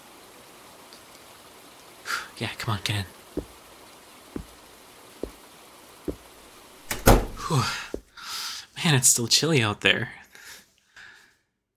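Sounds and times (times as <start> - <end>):
rain falling outside: 0.0 - 8.6
speech: 2.4 - 3.5, 7.5 - 7.8, 8.9 - 10.2
low taps: 3.4 - 3.6, 4.4 - 4.6, 5.2 - 5.5, 6.1 - 6.3.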